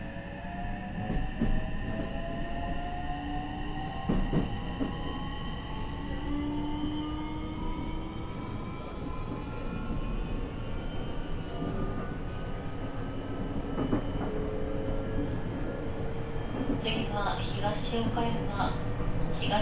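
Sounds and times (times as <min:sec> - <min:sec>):
train rolling along the rails heard from inside: 0:00.0 - 0:19.6.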